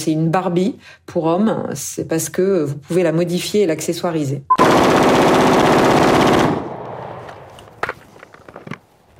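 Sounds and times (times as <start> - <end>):
speech: 0.0 - 5.6
AR-15 rifle firing rapid shots in sport shooting: 4.6 - 7.2.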